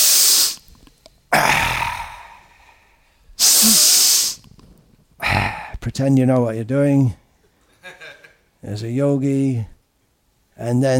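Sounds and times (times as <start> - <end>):
breathy exhalations during a meditation: 1.3 - 4.4, 5.2 - 5.8
speech: 6.0 - 7.2, 8.6 - 9.7, 10.6 - 10.9.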